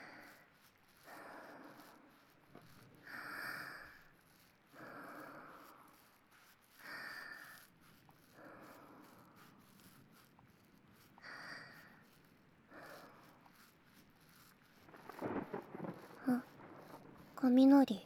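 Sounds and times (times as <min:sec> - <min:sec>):
rain hissing: 0:00.0 - 0:18.0
rolling thunder: 0:14.9 - 0:17.5
speech: 0:17.4 - 0:18.0.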